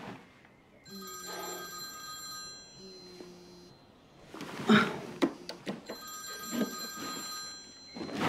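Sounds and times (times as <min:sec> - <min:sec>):
telephone ringing: 0:00.9 - 0:03.9, 0:05.8 - 0:08.2.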